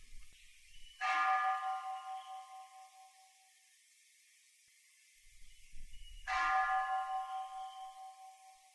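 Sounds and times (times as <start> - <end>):
temple bell struck during a meditation practice: 1.0 - 3.1, 6.3 - 8.7.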